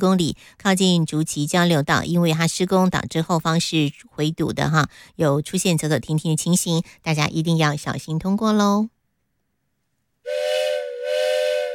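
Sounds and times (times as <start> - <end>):
speech: 0.0 - 9.0
train steam whistle blast: 10.3 - 11.7.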